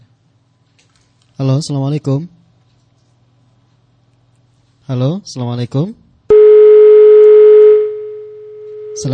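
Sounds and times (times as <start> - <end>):
speech: 1.4 - 2.4, 4.9 - 6.0, 9.0 - 9.1
telephone busy tone after phone-in call cut off: 6.3 - 9.1.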